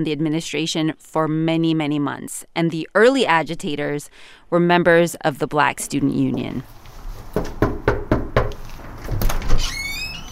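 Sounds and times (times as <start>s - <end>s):
speech: 0.0s - 6.8s, 7.4s - 7.7s
firm knocking on a front door: 7.3s - 8.5s
door clatter as the door is handled: 7.3s - 10.2s.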